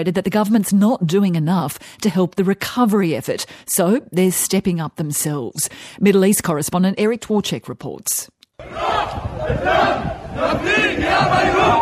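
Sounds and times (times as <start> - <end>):
speech: 0.0 - 11.8
large crowd chanting in unison while marching: 8.6 - 11.8.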